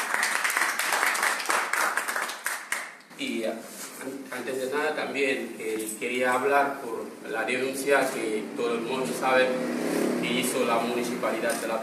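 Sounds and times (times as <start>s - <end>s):
crowd applauding at a press conference: 0.0s - 3.0s
speech: 3.2s - 11.8s.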